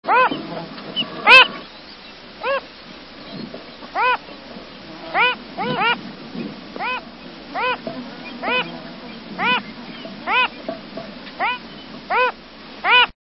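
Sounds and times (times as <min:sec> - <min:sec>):
Phalaropus tricolor calling: 0:00.0 - 0:13.1.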